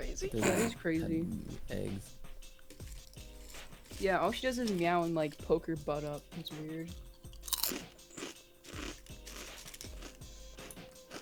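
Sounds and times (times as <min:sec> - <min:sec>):
speech: 0:00.2 - 0:02.2, 0:04.0 - 0:07.0, 0:07.7 - 0:08.0
person crunching and chewing marshmallows: 0:02.6 - 0:05.5, 0:06.9 - 0:11.2.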